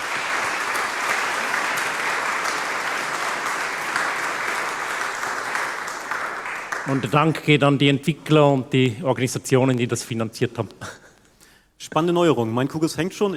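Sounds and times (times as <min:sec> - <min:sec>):
audience applause: 0:00.0 - 0:07.4
speech: 0:06.9 - 0:11.0, 0:11.8 - 0:13.3.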